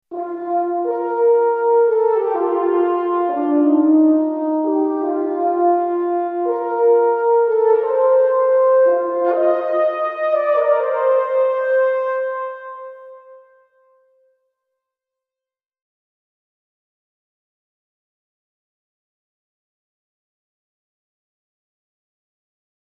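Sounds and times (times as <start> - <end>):
pure space french horn: 0.1 - 14.0.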